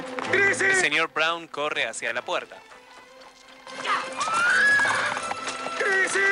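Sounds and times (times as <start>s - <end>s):
horse-drawn carriage pulling away: 0.0s - 6.3s
speech: 0.6s - 2.8s, 6.1s - 6.3s
horse whinnying: 3.8s - 5.9s.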